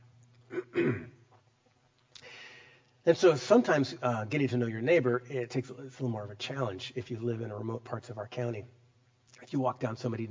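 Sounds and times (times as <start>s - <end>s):
person coughing from an irritated throat: 0.5s - 1.2s
speech: 3.1s - 8.8s, 9.4s - 10.3s.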